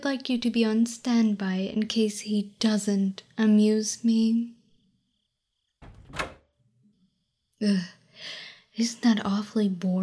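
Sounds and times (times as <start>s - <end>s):
speech: 0.0s - 4.6s, 7.6s - 10.0s
door being closed with a whooshing thud: 5.8s - 6.5s.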